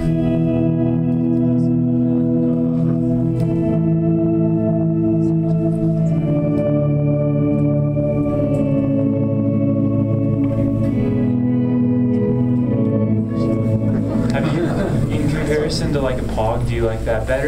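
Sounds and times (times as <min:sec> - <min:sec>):
instrument's sustained chords with reverb sounding organ-like: 0:00.0 - 0:17.4
laughter: 0:13.8 - 0:16.3.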